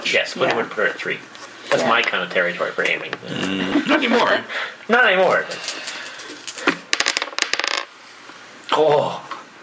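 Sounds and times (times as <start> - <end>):
speech: 0.1 - 5.9, 8.8 - 9.2
four dice rolling on a hard tabletop: 6.3 - 7.9.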